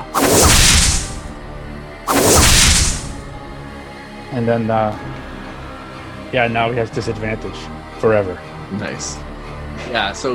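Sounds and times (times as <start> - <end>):
voice imitating a backhanded whip lash: 0.1 - 1.3, 2.1 - 3.3
sharp hissing swish sounds: 0.1 - 1.4, 2.1 - 3.7
speech: 4.5 - 5.2, 6.3 - 10.3.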